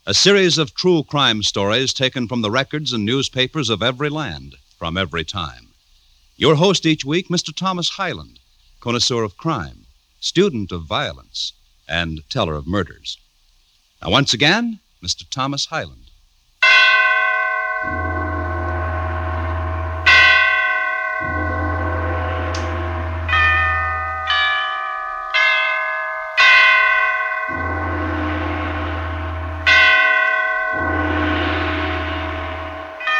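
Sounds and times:
speech: 0:00.0 - 0:05.7, 0:06.4 - 0:13.2, 0:14.0 - 0:16.0
great bells of St. Petersburg tolling a requiem: 0:16.6 - 0:33.1
deep sustained hum: 0:17.3 - 0:33.1.

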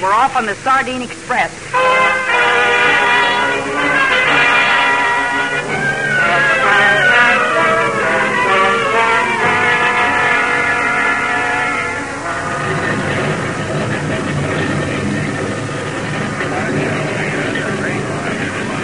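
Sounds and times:
speech: 0:00.0 - 0:02.2
airplane engines droning before takeoff: 0:00.0 - 0:18.8
indistinct voices murmuring faintly: 0:00.0 - 0:18.8.

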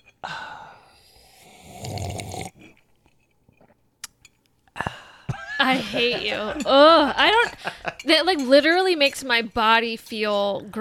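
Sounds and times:
slurping coffee against the microphone: 0:01.0 - 0:02.9
laughter: 0:05.3 - 0:08.1
speech: 0:05.6 - 0:10.7.

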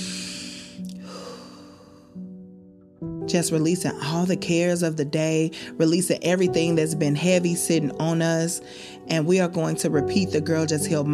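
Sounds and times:
deep inhale and slow exhale at the close of a guided healing mantra: 0:00.0 - 0:02.3
speech: 0:03.3 - 0:11.1.

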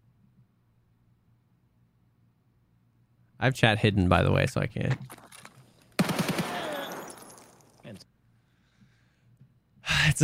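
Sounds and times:
speech: 0:03.4 - 0:05.3
UMP submachine gun firing in a video game: 0:06.0 - 0:07.4.

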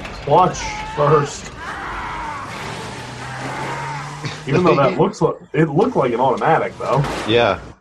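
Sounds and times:
car gears grinding harshly during a getaway: 0:00.0 - 0:07.7
speech: 0:00.2 - 0:01.6, 0:04.5 - 0:07.7
laughter: 0:03.4 - 0:05.5.

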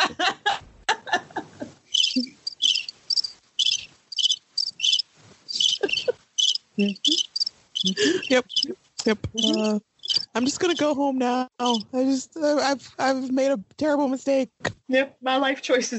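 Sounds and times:
laughter: 0:00.0 - 0:02.3, 0:05.5 - 0:06.2, 0:07.8 - 0:08.8
cricket chirping sound effect: 0:01.9 - 0:08.8, 0:09.4 - 0:10.4, 0:11.6 - 0:11.8
speech: 0:06.8 - 0:07.2, 0:07.8 - 0:15.9.

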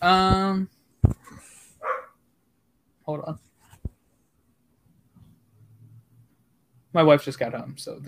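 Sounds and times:
speech: 0:00.0 - 0:00.8, 0:07.0 - 0:08.0
dogs barking excitedly: 0:01.8 - 0:02.2.

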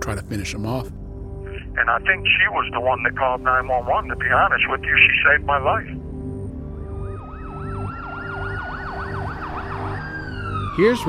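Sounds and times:
speech: 0:00.1 - 0:01.0, 0:01.8 - 0:06.0, 0:10.8 - 0:11.0
ambulance siren wailing: 0:06.6 - 0:11.0.

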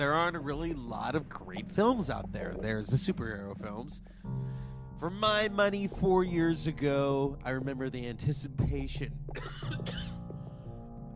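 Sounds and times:
speech: 0:00.0 - 0:10.0
short cough: 0:09.4 - 0:10.2.

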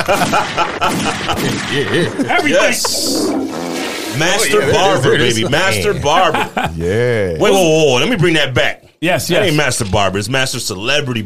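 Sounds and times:
gunshot sound effects: 0:00.0 - 0:02.1
laughter: 0:00.0 - 0:03.2, 0:04.2 - 0:07.8
speech: 0:00.1 - 0:03.6, 0:04.2 - 0:11.2.

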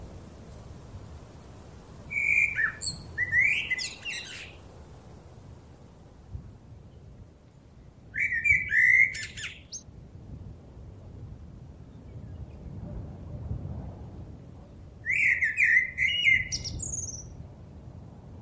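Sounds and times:
low rumble of wind on a very windy evening: 0:00.0 - 0:18.4
blackbird singing fluting whistles: 0:02.1 - 0:04.6, 0:08.2 - 0:09.8, 0:15.1 - 0:17.4.

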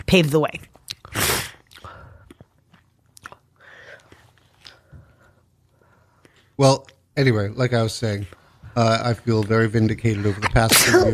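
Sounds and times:
speech: 0:00.1 - 0:01.3, 0:06.6 - 0:11.1
sharp sneeze: 0:01.1 - 0:01.6, 0:10.6 - 0:11.1.

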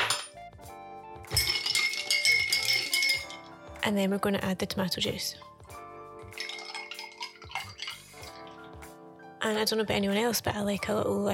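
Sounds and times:
ice clinking in a glass stirred with vodka: 0:01.3 - 0:03.6, 0:06.4 - 0:08.6
speech: 0:03.8 - 0:05.6, 0:09.5 - 0:11.3.

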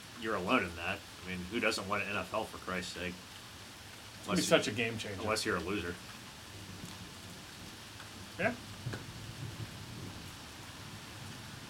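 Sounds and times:
steady dense rain hissing: 0:00.0 - 0:11.6
speech: 0:00.2 - 0:03.3, 0:04.2 - 0:06.2, 0:08.4 - 0:09.0
low thunder rumble: 0:06.5 - 0:11.6.

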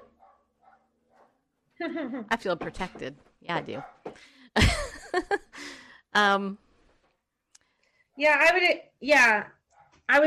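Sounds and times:
faint dog barking: 0:00.0 - 0:01.4, 0:03.8 - 0:04.0
speech: 0:01.8 - 0:05.5, 0:06.2 - 0:06.6, 0:08.2 - 0:10.2.

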